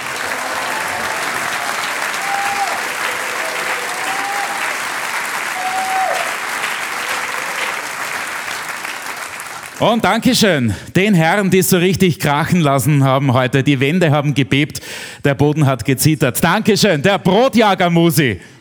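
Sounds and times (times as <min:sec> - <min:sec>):
faint whistles and cheers from audience: 0:00.0 - 0:09.0
large audience applause: 0:00.0 - 0:10.4
speech: 0:09.8 - 0:18.5.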